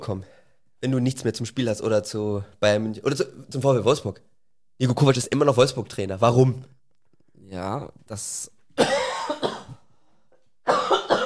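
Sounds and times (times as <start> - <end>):
speech: 0.0 - 6.8, 7.5 - 9.0
person coughing: 8.8 - 9.9, 10.7 - 11.2.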